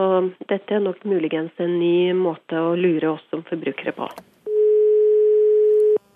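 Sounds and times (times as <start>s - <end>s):
speech: 0.0s - 4.4s
ringback tone from an outgoing phone call: 4.5s - 6.1s.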